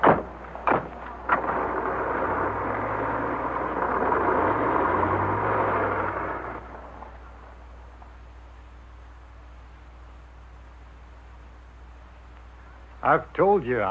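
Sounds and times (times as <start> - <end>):
car engine revving and driving off with gear changes: 1.2 - 7.6
speech: 13.1 - 13.8.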